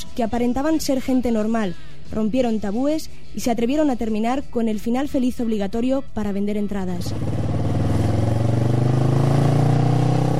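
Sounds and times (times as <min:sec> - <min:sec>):
speech: 0:00.2 - 0:07.4
motorcycle engine revving with a throaty rumble: 0:07.0 - 0:10.3.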